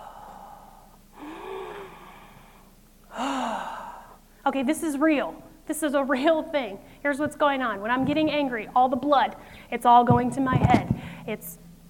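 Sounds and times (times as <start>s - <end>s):
deep breathing in through the nose and out through the mouth: 0.0s - 4.4s
speech: 4.5s - 11.6s.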